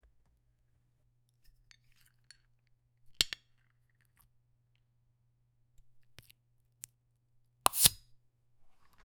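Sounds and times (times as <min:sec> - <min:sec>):
carbonated bottle opening: 0:07.7 - 0:08.0.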